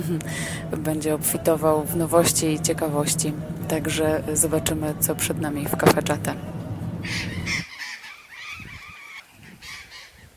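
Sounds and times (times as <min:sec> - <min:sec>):
speech: 0:00.0 - 0:07.4
large flock of parrots squawking from trees in the Cafayate valley, northern Argentina: 0:07.0 - 0:10.3.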